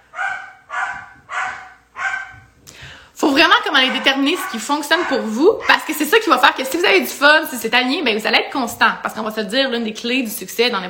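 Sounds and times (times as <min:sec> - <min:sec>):
dog barking: 0:00.0 - 0:02.5, 0:03.8 - 0:06.0
speech: 0:03.4 - 0:10.8.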